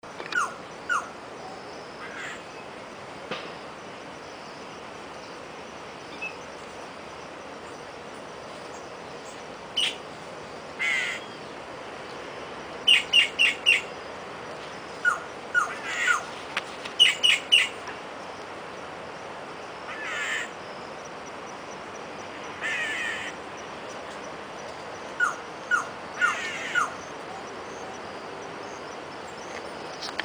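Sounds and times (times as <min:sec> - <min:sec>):
boyero negro calling: 0:00.2 - 0:01.1, 0:09.8 - 0:10.0, 0:10.8 - 0:11.4, 0:12.9 - 0:14.0, 0:15.0 - 0:16.3, 0:17.0 - 0:17.8, 0:19.9 - 0:20.6, 0:22.3 - 0:23.4, 0:25.1 - 0:27.5.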